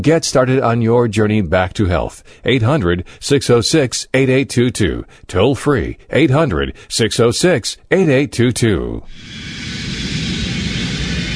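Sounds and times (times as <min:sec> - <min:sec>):
speech: 0:00.0 - 0:10.2
airplane cabin engine drone: 0:09.1 - 0:11.3
broad airy hiss in airplane cabin: 0:09.1 - 0:11.3.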